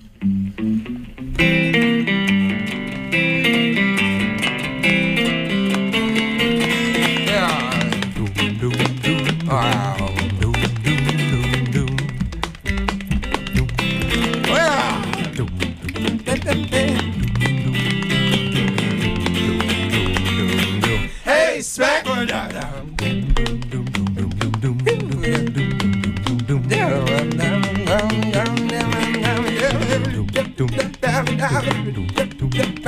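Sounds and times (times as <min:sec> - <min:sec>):
full band playing upbeat stomping tune in C major: 0:01.4 - 0:32.8.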